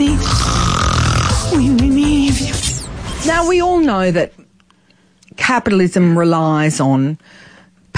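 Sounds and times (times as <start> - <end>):
loud snoring with rough rattling breaths and whistling wheezes: 0.1 - 1.7
speech: 3.3 - 4.5, 5.4 - 7.9.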